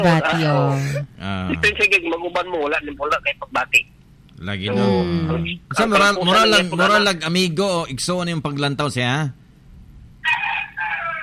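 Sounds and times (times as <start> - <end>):
speech: 0.0 - 9.4
rooster crowing: 10.2 - 11.2.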